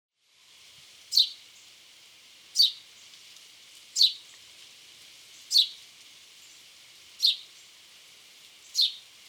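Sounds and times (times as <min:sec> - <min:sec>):
steady hiss: 0:00.2 - 0:09.2
house sparrow Passer domesticus chirping: 0:01.1 - 0:01.7, 0:02.5 - 0:03.0, 0:04.0 - 0:04.4, 0:05.3 - 0:05.8, 0:07.2 - 0:07.7, 0:08.6 - 0:09.1.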